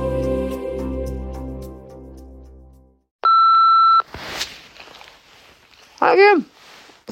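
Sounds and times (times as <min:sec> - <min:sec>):
music: 0:00.0 - 0:03.1
steady ringing tone on a phone line: 0:03.2 - 0:04.1
speech: 0:06.2 - 0:06.5.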